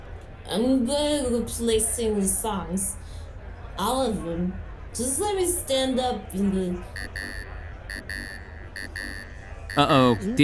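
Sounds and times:
speech: 0.5s - 3.2s, 3.8s - 9.2s, 9.8s - 10.4s
pedometer tracker chip beeping: 6.9s - 10.4s.

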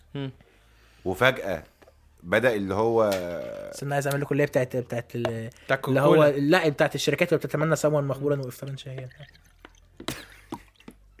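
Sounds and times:
speech: 0.1s - 9.5s
water pouring in short, uneven splashes: 5.9s - 11.1s.

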